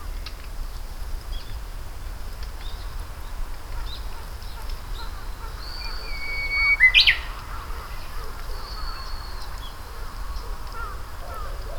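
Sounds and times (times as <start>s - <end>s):
Japanese bush warbler song: 0.0s - 11.7s.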